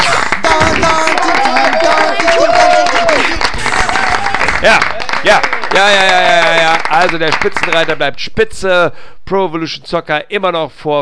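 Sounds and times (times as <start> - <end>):
voices cheering and calling out: 0.0 - 7.9
short burst of applause for video game charts: 0.0 - 8.0
speech: 4.6 - 11.0.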